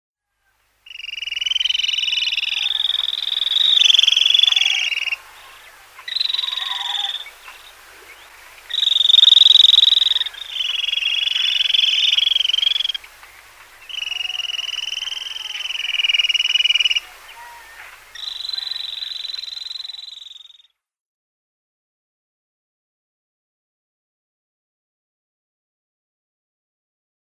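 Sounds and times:
Fulvous Babbler calls: 0.9s - 20.7s.

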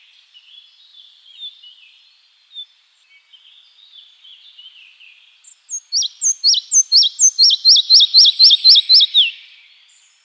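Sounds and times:
red-breasted flycatcher song of high two-part whistled notes: 5.7s - 9.7s.

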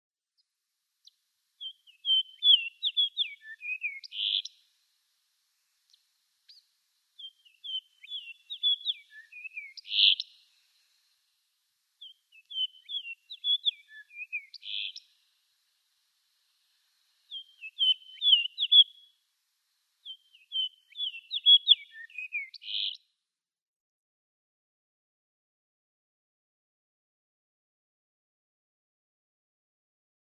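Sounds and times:
Fox Sparrow singing: 1.6s - 4.6s, 6.5s - 10.5s, 12.0s - 15.1s, 17.3s - 19.1s, 20.0s - 23.0s.

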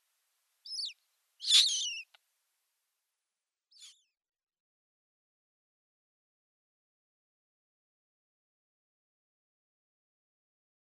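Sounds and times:
Eurasian magpie nestlings giving high harmonic squealing calls: 0.7s - 2.1s.

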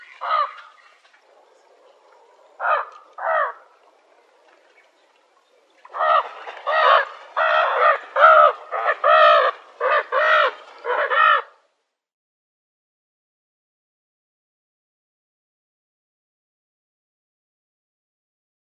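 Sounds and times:
African spoonbill giving hoarse nasal grunting calls: 5.9s - 11.5s.

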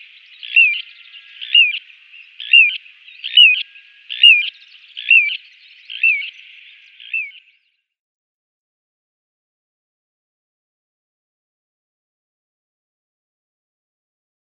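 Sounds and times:
little ringed plover giving whistled calls: 0.0s - 7.5s.

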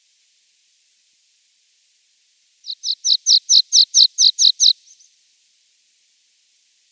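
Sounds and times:
water pipit song: 2.7s - 4.9s.

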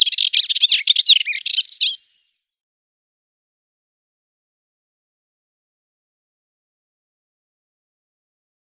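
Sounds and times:
melodious warbler song: 0.0s - 2.5s.

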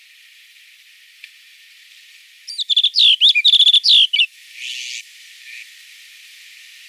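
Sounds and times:
snow bunting singing twittering phrase of clear slurred whistles: 2.5s - 5.7s.

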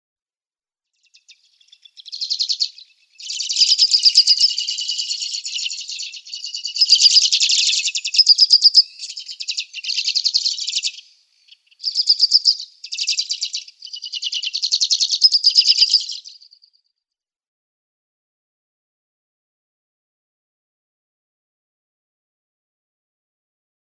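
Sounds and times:
Sudan golden sparrow singing: 1.0s - 16.6s.

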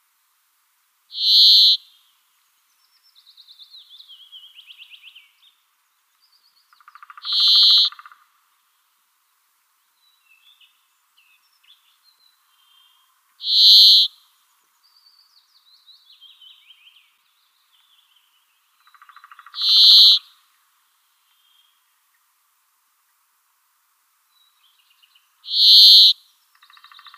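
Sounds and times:
brambling twittering and trill: 1.2s - 1.8s, 6.8s - 8.0s, 13.4s - 14.1s, 18.8s - 20.2s, 25.5s - 27.1s.

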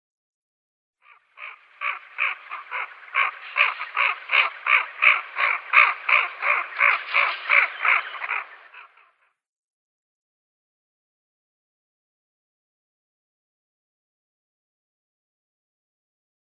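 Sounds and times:
female Eurasian wigeon flight call: 1.0s - 9.2s.

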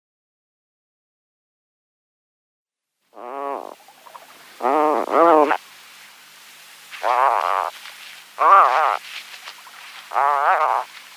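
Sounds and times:
Atlantic puffin giving low wavering groans: 3.2s - 3.8s, 4.6s - 5.6s, 7.0s - 7.7s, 8.4s - 9.0s, 10.1s - 10.9s.

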